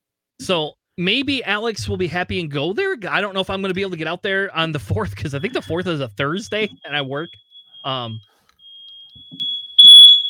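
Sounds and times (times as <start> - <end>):
speech: 0.5 - 8.3
smoke-style fire alarm beeping: 5.3 - 10.2.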